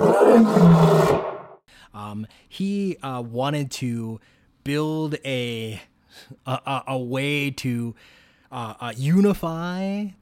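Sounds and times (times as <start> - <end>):
lion roaring in a film studio logo: 0.0 - 1.5
speech: 0.4 - 1.0, 2.1 - 10.2.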